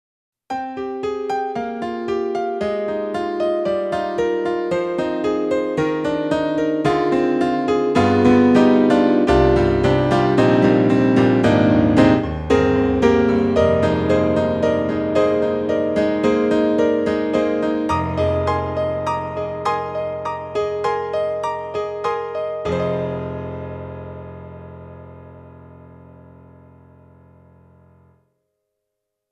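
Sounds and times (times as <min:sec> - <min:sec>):
YAMAHA MU90 bright piano: 0:00.5 - 0:28.4.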